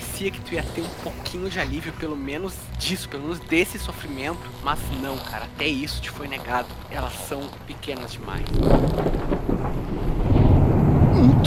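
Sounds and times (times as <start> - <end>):
speech: 0.2 - 10.2
thunder rumbling in the sky: 8.3 - 11.4.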